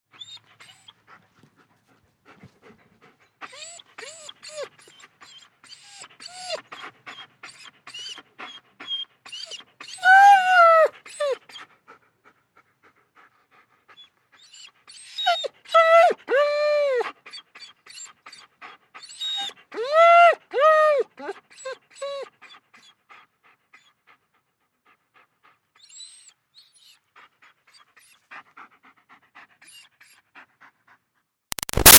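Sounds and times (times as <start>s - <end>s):
German Shepherd dog whining: 0.1s - 1.0s, 3.4s - 11.6s, 14.0s - 22.9s, 25.8s - 27.0s
German Shepherd dog panting: 0.1s - 10.0s, 10.8s - 15.7s, 17.0s - 19.8s, 21.2s - 31.3s.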